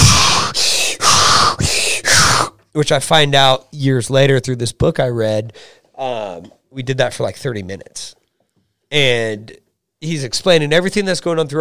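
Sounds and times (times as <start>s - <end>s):
person hyperventilating with rapid rasping breaths: 0.0s - 2.5s
speech: 2.8s - 8.2s, 8.9s - 11.5s.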